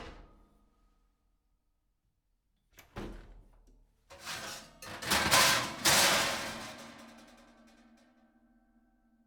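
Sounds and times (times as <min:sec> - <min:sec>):
pans clashing: 0:04.2 - 0:07.3.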